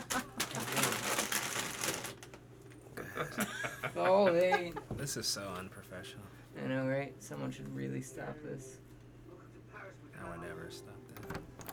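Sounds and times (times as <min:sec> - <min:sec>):
crunchy material being crinkled: 0:00.0 - 0:02.4
speech: 0:03.2 - 0:08.8, 0:10.2 - 0:11.4.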